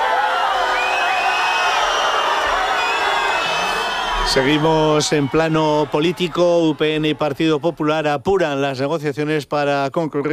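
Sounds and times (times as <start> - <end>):
large crowd booing and shouting: 0.0 - 8.2
speech: 4.3 - 10.3.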